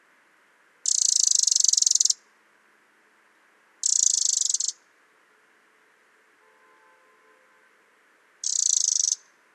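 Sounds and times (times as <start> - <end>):
Eurasian wren Troglodytes troglodytes rattling calls: 0.8 - 2.2, 3.8 - 4.8, 8.4 - 9.3.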